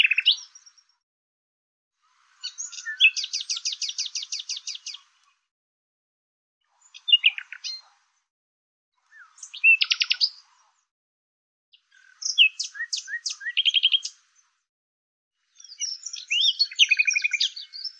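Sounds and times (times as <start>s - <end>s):
bird twittering: 2.4s - 5.0s, 6.8s - 7.9s, 9.1s - 10.4s, 11.8s - 14.2s, 15.6s - 17.9s.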